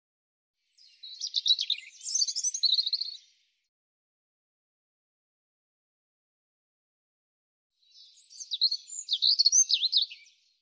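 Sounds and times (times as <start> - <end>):
European robin singing: 0.7 - 3.4, 7.8 - 10.6.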